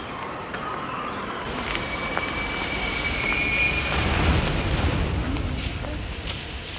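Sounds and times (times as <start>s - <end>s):
faint high squeals of a metro train: 0.1s - 5.0s
metro train running through a subway: 1.1s - 6.7s.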